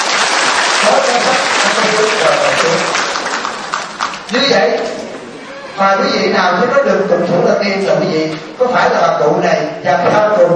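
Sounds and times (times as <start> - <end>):
audience applause at a Buddhist sermon: 0.0 - 4.6
speech: 4.3 - 5.0, 5.8 - 10.5.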